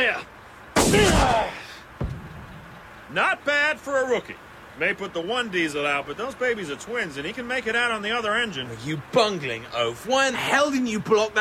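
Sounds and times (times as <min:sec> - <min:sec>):
bazooka firing with a loud broad blast: 0:00.8 - 0:02.8
weak thud: 0:02.0 - 0:02.8
speech: 0:03.1 - 0:11.3.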